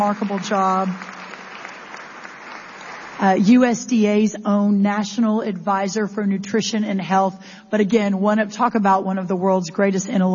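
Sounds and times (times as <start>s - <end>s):
speech: 0.0s - 1.2s, 3.2s - 10.3s
event audience applause greeting a guest: 0.0s - 3.4s.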